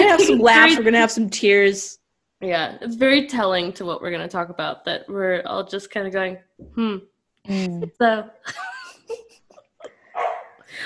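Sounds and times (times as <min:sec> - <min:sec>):
speech: 0:00.1 - 0:09.2
male dog yipping and barking: 0:10.1 - 0:10.6.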